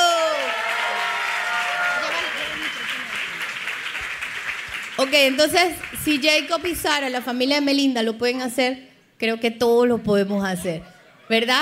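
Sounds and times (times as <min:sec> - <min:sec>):
audience applause: 0:00.2 - 0:06.7
speech: 0:05.0 - 0:11.5.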